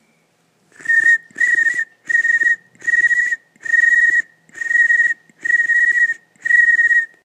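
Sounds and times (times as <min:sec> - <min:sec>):
cricket chirping: 0:00.8 - 0:07.1.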